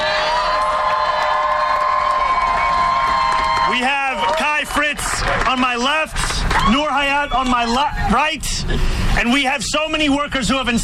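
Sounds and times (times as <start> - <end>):
crowd cheering and whooping: 0.0 - 5.5, 6.4 - 8.2
scattered audience clapping: 0.6 - 6.8
speech: 3.8 - 10.8.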